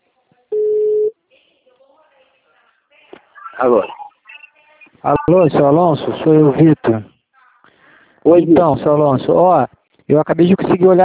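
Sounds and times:
ringback tone on an outgoing phone call: 0.5 - 1.1
speech: 3.6 - 4.0, 5.0 - 7.1, 8.2 - 11.0.

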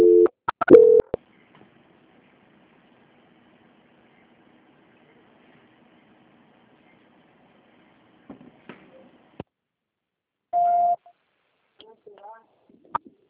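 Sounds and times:
telephone line beeps during a call transfer: 0.0 - 1.2, 10.6 - 11.0.

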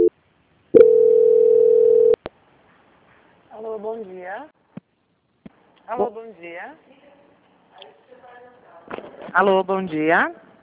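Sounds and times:
long steady telephone line tone during a call transfer: 0.0 - 2.2
telephone line clipped beep during a call transfer: 0.8 - 2.2
speech: 3.8 - 4.6, 5.9 - 7.0, 9.0 - 10.5.

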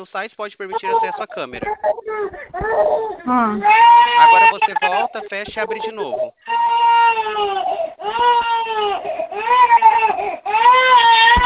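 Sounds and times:
speech: 0.0 - 11.1
baby crying: 0.7 - 11.4
baby gasping breaths: 2.0 - 3.3, 7.6 - 8.1, 8.8 - 9.4, 10.1 - 10.5.

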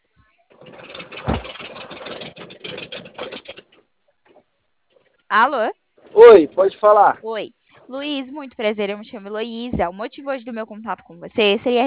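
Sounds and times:
car engine idling after pulling over, heard over a phone line: 0.5 - 7.2
brief louder thump: 1.1 - 1.8, 9.7 - 10.0
speech: 5.3 - 11.8.

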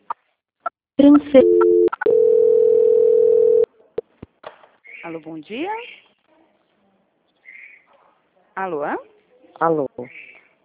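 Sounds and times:
speech: 1.0 - 1.8, 5.1 - 6.0, 8.6 - 10.6
telephone line tones while a call is transferred: 1.4 - 3.7.

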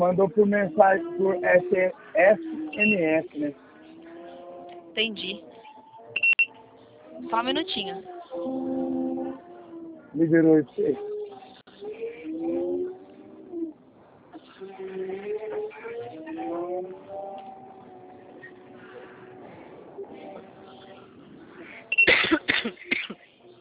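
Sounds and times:
speech: 0.0 - 3.6, 5.0 - 5.5, 7.2 - 8.9, 10.1 - 11.1
soft tonal humming or cooing: 0.0 - 22.0
person coughing harshly: 22.0 - 23.2.

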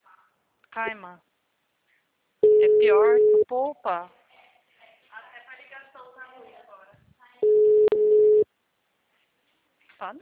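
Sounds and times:
speech: 0.8 - 1.3, 2.6 - 4.2, 10.0 - 10.2
telephone dial tone while a number is being dialed: 7.4 - 8.4.

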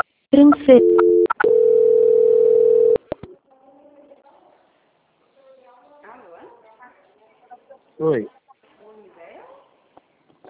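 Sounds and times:
speech: 0.3 - 1.2
telephone tone while call is being transferred: 0.6 - 3.1.

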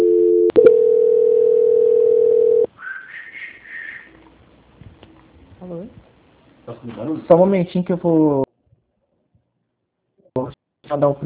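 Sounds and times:
phone line transfer tone: 0.0 - 2.7
speech: 6.8 - 8.4, 11.0 - 11.2.

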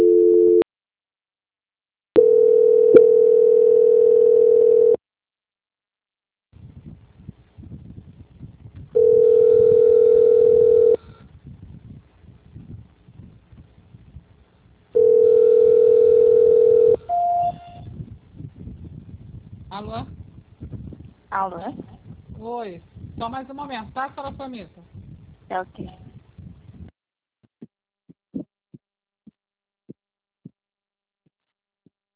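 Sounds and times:
telephone line tones while a call to a bank call center is transferred: 0.0 - 0.6, 2.2 - 5.0, 9.0 - 11.0, 15.0 - 17.8
long steady mid-pitched telephone beeps: 16.9 - 17.8
brief higher telephone beep: 17.1 - 17.8
speech: 21.4 - 24.8, 25.5 - 26.0.

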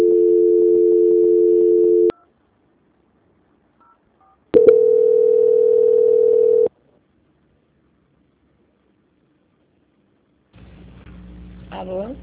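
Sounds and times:
long steady mid-pitched telephone tones while a call is transferred: 0.0 - 2.4, 3.8 - 6.7.

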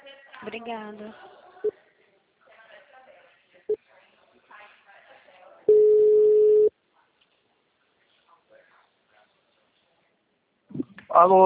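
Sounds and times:
speech: 0.4 - 1.8, 11.2 - 11.4
telephone tone after a dropped call: 5.7 - 6.7.

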